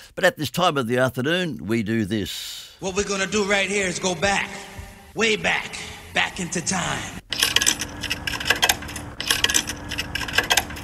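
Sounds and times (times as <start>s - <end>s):
speech: 0.1s - 7.2s
coins clinking and rattling into a jukebox: 7.4s - 10.8s.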